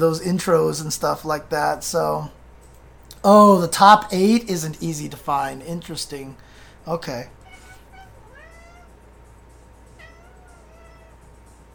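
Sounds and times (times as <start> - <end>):
speech: 0.0 - 2.4, 3.2 - 7.4
steady low electrical hum: 0.0 - 11.7
cat meowing: 7.4 - 9.0, 10.0 - 11.3.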